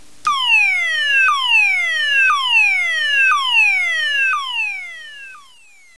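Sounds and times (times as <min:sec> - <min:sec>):
DIN tone sweep from 1200 to 500 Hz: 0:00.3 - 0:05.9.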